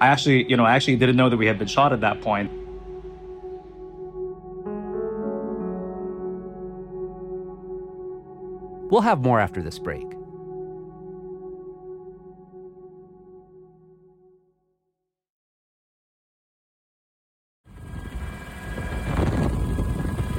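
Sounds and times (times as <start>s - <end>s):
speech: 0.0s - 2.6s, 8.9s - 10.2s
helicopter rotor droning with buzzing tone: 17.8s - 20.3s.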